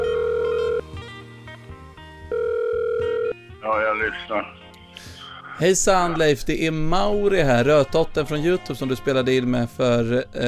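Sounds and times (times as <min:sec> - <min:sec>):
ringback tone of an outgoing telephone call: 0:00.0 - 0:01.0, 0:02.3 - 0:03.4
speech: 0:04.0 - 0:04.6, 0:05.6 - 0:10.4.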